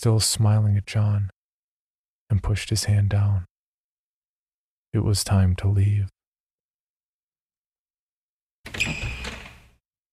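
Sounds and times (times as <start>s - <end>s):
speech: 0.0s - 1.4s, 2.3s - 3.5s, 4.9s - 6.2s
door swinging open with a squeaky creak: 8.7s - 9.8s.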